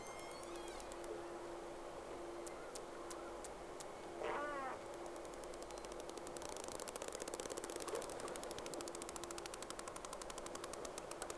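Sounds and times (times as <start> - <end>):
steady underlying hum: 0.0 - 11.3
sharp clicks: 0.5 - 1.2, 4.9 - 11.3
whale call: 4.2 - 4.8.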